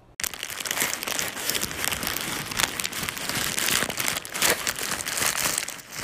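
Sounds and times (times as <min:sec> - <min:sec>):
paper crinkled continuously imitating violent crackling fire: 0:00.2 - 0:06.0.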